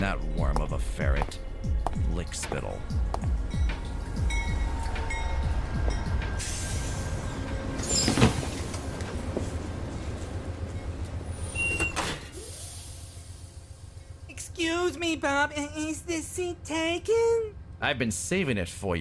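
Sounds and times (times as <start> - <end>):
speech: 0.0 - 3.7, 15.0 - 18.9
train rumbling along the rails with rhythmic clatter: 2.8 - 17.8
brief high metallic squeals: 4.2 - 8.6.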